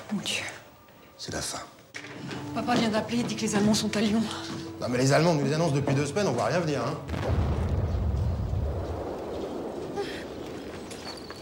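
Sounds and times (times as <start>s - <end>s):
speech: 0.1s - 0.6s, 2.6s - 7.5s
deep rumbling explosion: 7.1s - 11.4s.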